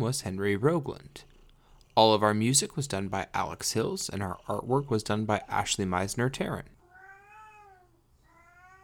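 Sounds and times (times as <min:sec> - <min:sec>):
speech: 0:00.0 - 0:01.3, 0:02.0 - 0:06.8
cat meowing: 0:06.8 - 0:08.8.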